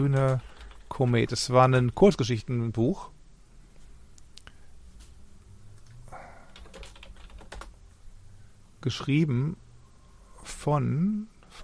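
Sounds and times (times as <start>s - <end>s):
speech: 0.0s - 3.1s, 8.8s - 9.6s, 10.4s - 11.6s
rapid typing on a computer keyboard during an online search: 0.1s - 0.9s, 6.5s - 7.8s.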